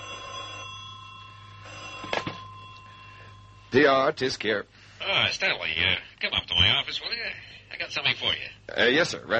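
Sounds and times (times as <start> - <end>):
desk telephone bell ringing: 0.0 - 4.0
low hum: 0.0 - 9.3
speech: 3.7 - 6.0, 6.6 - 9.3.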